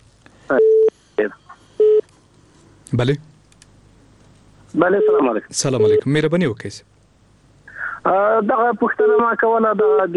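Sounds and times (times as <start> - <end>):
telephone line beeps as a listener's call is taken on air: 0.5 - 0.9
speech: 0.5 - 1.4, 2.9 - 3.3, 4.7 - 6.9, 8.0 - 10.1.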